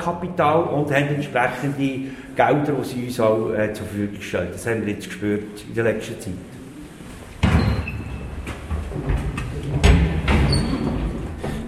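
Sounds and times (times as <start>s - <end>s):
speech: 0.0s - 6.5s
doors opening and shutting in rooms of a building: 7.1s - 11.6s.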